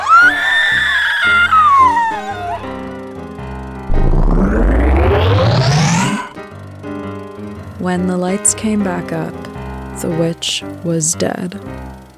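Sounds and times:
shrill high-pitched blood-curdling scream: 0.0s - 3.0s
loud rising musical swell: 0.0s - 6.4s
tense sustained musical tones: 0.0s - 6.4s
speech: 7.9s - 9.4s, 10.0s - 12.0s.

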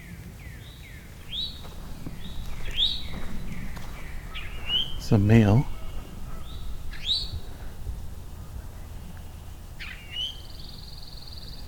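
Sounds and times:
steady low outdoor rumble: 1.0s - 11.6s
northern cardinal whistles: 1.3s - 5.0s, 5.7s - 7.5s, 9.2s - 11.6s
pine warbler trill: 1.3s - 11.6s
speech: 5.1s - 5.7s.

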